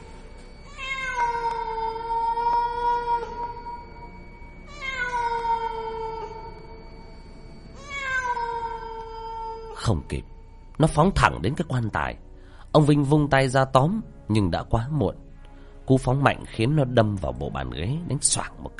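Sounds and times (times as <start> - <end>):
cat meowing mournfully: 0.6 - 6.9, 7.8 - 9.8
speech: 9.9 - 15.2, 15.9 - 18.7.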